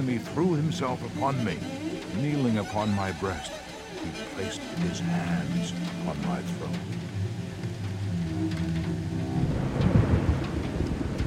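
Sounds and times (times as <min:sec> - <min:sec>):
speech: 0:00.0 - 0:07.1
hail over a city: 0:00.0 - 0:11.2
steady rain over a city: 0:00.0 - 0:11.2
wind sweeping over a city: 0:00.0 - 0:11.2
deep rolling thunder over a city: 0:08.4 - 0:11.2.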